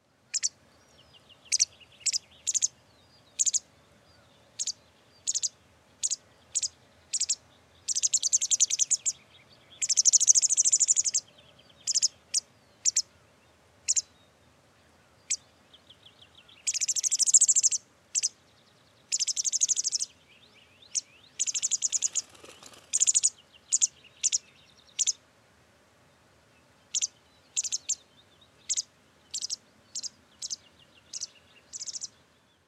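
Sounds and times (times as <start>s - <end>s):
white wagtail Motacilla alba calling: 0.3s - 0.6s, 1.4s - 2.8s, 3.4s - 3.6s, 4.6s - 13.1s, 13.9s - 14.1s, 16.5s - 18.4s, 19.1s - 20.1s, 20.9s - 25.2s, 26.9s - 28.0s, 28.6s - 32.1s.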